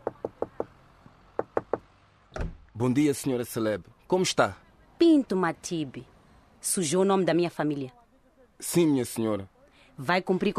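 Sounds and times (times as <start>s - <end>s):
knuckles rapping on a house door: 0.0s - 0.8s, 1.4s - 1.9s
speech: 2.8s - 8.0s, 8.6s - 10.5s.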